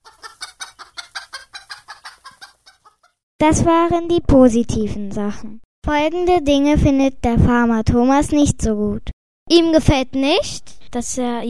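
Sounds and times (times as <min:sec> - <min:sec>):
chickens clucking: 0:00.0 - 0:03.2
speech: 0:03.4 - 0:11.4.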